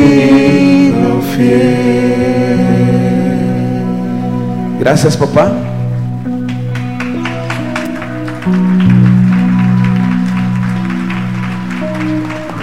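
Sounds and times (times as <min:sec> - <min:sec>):
keyboard or organ chords: 0:00.0 - 0:12.6
speech: 0:04.8 - 0:05.8
church audience clapping: 0:06.3 - 0:12.6.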